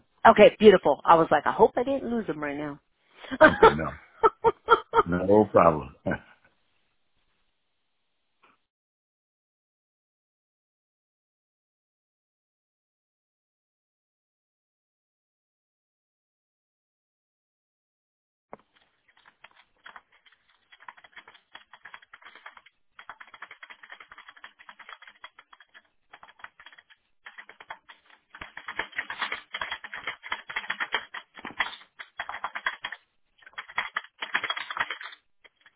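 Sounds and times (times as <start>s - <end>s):
speech: 0.2s - 6.3s
laughter: 3.3s - 5.5s
fast clicky typing on a computer keyboard: 18.6s - 35.7s.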